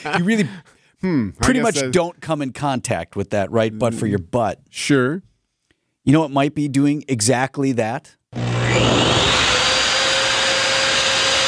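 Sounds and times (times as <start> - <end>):
speech: 0.0 - 5.3, 6.0 - 9.0
electric hand dryer blowing air: 8.4 - 11.4.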